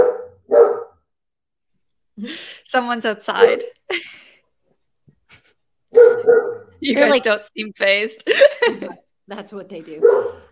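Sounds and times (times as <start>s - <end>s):
dogs barking: 0.0s - 1.0s, 5.9s - 6.8s, 9.9s - 10.5s
speech: 2.2s - 4.3s, 5.9s - 10.4s
laughter: 8.2s - 9.0s.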